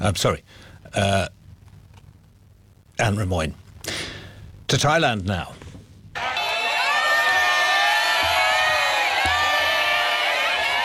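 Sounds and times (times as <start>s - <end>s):
speech: 0.0s - 1.4s, 3.0s - 4.1s, 4.7s - 5.6s
large crowd cheering and shouting in the streets of Bangkok Thailand: 6.2s - 10.8s.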